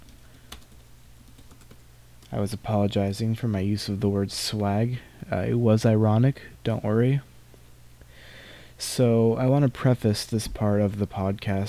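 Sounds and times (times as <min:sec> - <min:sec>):
typing on a laptop keyboard: 0:00.0 - 0:01.8
low steady hum: 0:00.0 - 0:11.6
speech: 0:02.3 - 0:07.3, 0:08.8 - 0:11.6.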